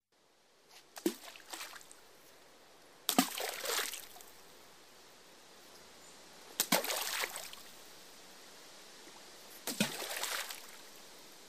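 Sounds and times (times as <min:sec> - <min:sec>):
thrown stone splashing into water: 0:03.1 - 0:04.2, 0:06.6 - 0:07.7, 0:09.6 - 0:10.8.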